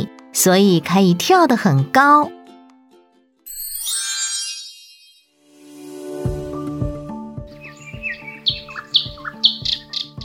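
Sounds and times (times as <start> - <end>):
speech: 0.4 - 2.4
light rhythmic musical jingle with ringing bell-like notes and soft beats: 3.5 - 6.9
small birds chirping and trilling: 7.4 - 10.2.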